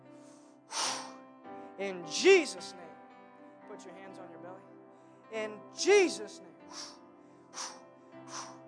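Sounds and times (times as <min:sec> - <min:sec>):
deep breaths drawn in during a guided prayer: 0:00.1 - 0:01.8, 0:06.7 - 0:08.6
speech: 0:01.8 - 0:02.9, 0:03.8 - 0:04.7, 0:05.3 - 0:07.0.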